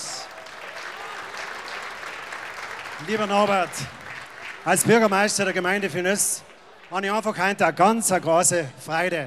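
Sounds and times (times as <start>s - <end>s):
audience applause inside a tent at a community gathering: 0.0s - 6.9s
speech: 3.0s - 4.0s, 4.6s - 9.2s.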